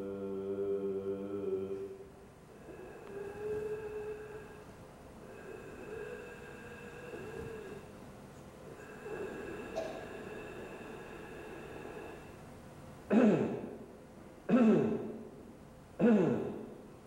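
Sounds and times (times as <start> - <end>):
low hum: 0.0 - 17.0
person clearing throat roughly: 9.6 - 10.2, 13.1 - 13.9, 14.5 - 15.3, 16.0 - 16.8.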